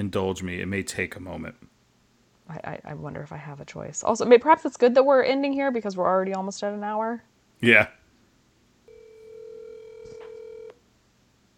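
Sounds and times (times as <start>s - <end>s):
speech: 0.0s - 1.7s, 2.5s - 8.0s
electronic telephone keypad tone: 8.9s - 10.8s.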